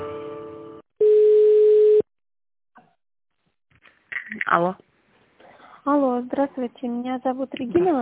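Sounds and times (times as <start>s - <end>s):
steady telephone line beep: 1.0s - 2.0s
speech: 4.6s - 4.9s, 5.9s - 7.9s.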